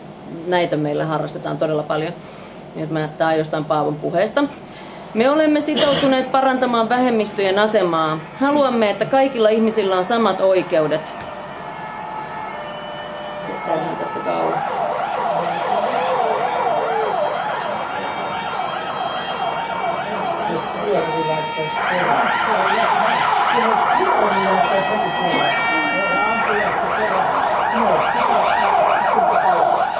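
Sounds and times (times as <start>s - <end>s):
speech: 0.3s - 11.3s, 13.7s - 14.8s, 20.6s - 29.9s
steady roar of traffic: 5.0s - 29.9s
fire engine sirens passing by: 6.9s - 29.9s.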